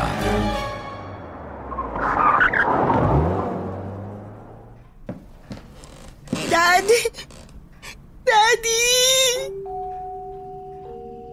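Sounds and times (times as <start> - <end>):
car engine revving hard as car speeds toward a beach resort: 0.0 - 5.0
car tires screeching: 0.0 - 7.3
speech: 6.8 - 7.3, 8.4 - 9.6.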